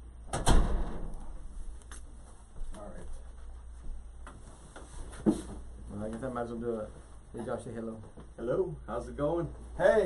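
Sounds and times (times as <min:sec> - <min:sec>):
door swinging shut with a thud and rattle: 0:00.3 - 0:01.2
speech: 0:05.3 - 0:05.5, 0:06.2 - 0:10.0.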